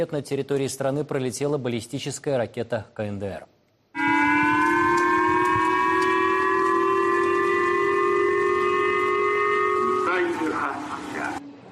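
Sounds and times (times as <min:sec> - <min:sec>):
speech: 0:00.0 - 0:03.5
air raid warning siren in Japan: 0:04.0 - 0:11.4.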